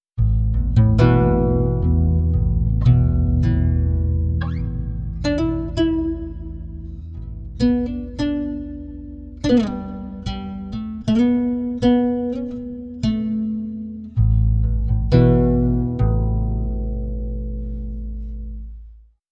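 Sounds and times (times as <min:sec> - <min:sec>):
pitch-shifted guitar: 0:00.2 - 0:18.8.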